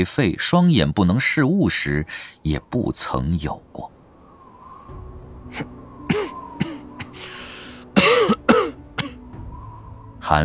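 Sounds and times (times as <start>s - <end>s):
speech: 0.0s - 4.0s, 5.5s - 5.8s
man coughing under a courtyard tree on a cold windy night: 6.1s - 7.2s, 8.0s - 9.2s.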